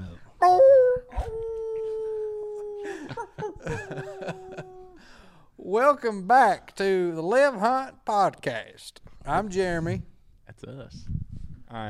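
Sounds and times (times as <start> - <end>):
person imitating a dog howl: 0.4 - 3.1, 3.9 - 5.0
people chuckling and laughing: 2.7 - 5.0
speech: 5.7 - 11.8.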